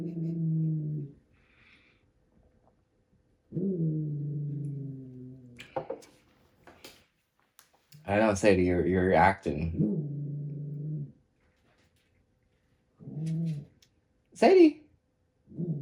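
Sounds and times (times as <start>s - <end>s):
dog growling: 0.0s - 1.2s, 3.5s - 5.6s, 9.6s - 11.2s, 13.0s - 13.8s, 15.5s - 15.8s
speech: 8.1s - 10.2s.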